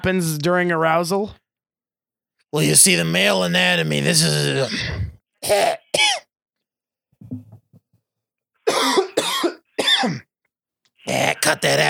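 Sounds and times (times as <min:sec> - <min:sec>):
speech: 0:00.0 - 0:01.4, 0:02.5 - 0:06.2, 0:11.1 - 0:11.8
person coughing in sharp harsh bursts: 0:04.6 - 0:06.3, 0:08.7 - 0:10.2
person clearing throat: 0:08.7 - 0:10.3.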